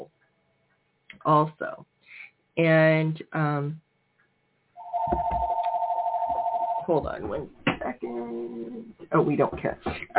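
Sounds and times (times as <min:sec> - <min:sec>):
speech: 0:01.2 - 0:01.9, 0:02.6 - 0:03.8, 0:06.9 - 0:10.1
electronic telephone ringing inside a house: 0:04.8 - 0:06.9.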